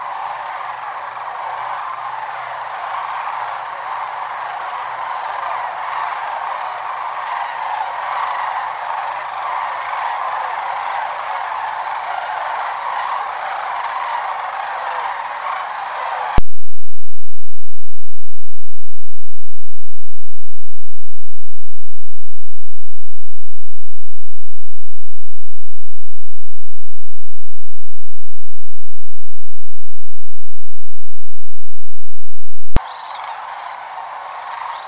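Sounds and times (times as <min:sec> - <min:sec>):
sandhill cranes calling: 0:00.0 - 0:16.3, 0:32.8 - 0:34.8.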